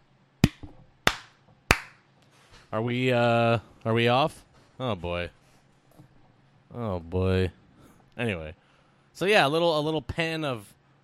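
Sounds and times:
sharp crisp hand claps: 0.4s - 2.0s
speech: 2.7s - 5.4s, 6.7s - 7.6s, 8.2s - 8.6s, 9.2s - 10.8s.

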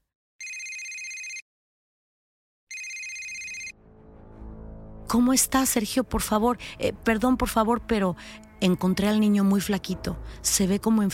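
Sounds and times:
bright high electronic telephone ringing as a call is placed abroad: 0.4s - 1.4s, 2.7s - 3.7s
speech: 5.1s - 11.1s.

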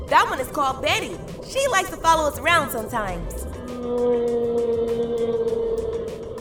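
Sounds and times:
speech: 0.1s - 5.3s
blue whale moaning: 3.5s - 6.3s.

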